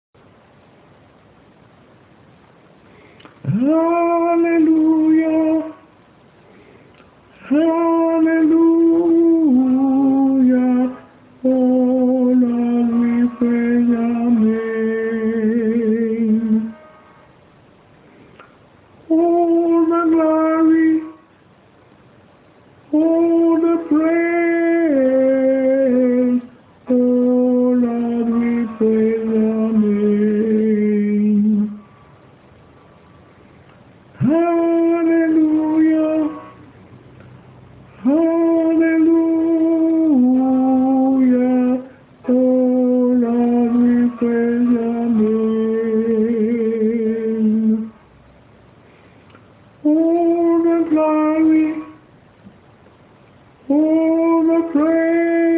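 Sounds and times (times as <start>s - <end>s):
tenor singing: 3.2s - 6.0s, 7.3s - 17.2s, 19.0s - 21.4s, 22.8s - 31.9s, 34.1s - 37.3s, 37.9s - 48.0s, 49.8s - 52.1s, 53.6s - 55.5s.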